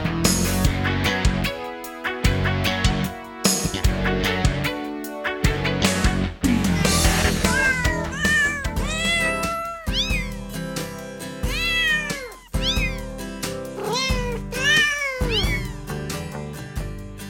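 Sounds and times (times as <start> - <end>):
steady musical backing: 0.0 - 17.2
song made of pitched cat meows: 6.5 - 10.6, 11.4 - 16.0.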